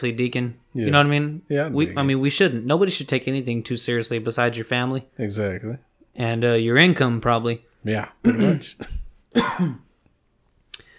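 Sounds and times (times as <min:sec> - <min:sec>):
speech: 0:00.0 - 0:09.8
person coughing: 0:08.2 - 0:10.0.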